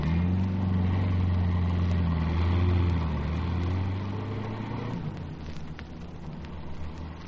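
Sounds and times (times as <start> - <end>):
car engine driving away down street: 0.0 - 7.2.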